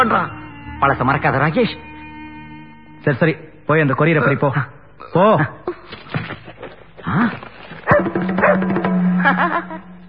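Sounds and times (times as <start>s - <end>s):
speech: 0.0s - 1.9s, 3.0s - 6.1s, 7.0s - 9.9s
dog barking in short high yelps: 7.9s - 8.7s.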